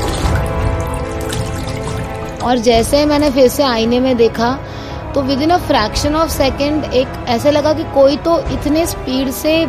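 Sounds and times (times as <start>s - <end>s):
water splashed on face at sink: 0.0s - 3.6s
speech: 2.4s - 9.6s.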